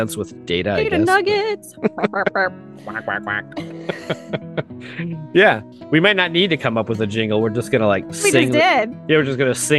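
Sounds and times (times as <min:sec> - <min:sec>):
laughter: 0:00.0 - 0:09.7
speech: 0:00.0 - 0:09.7
person imitating a chicken with nasal clucks and squawks: 0:00.8 - 0:01.2, 0:08.2 - 0:08.6.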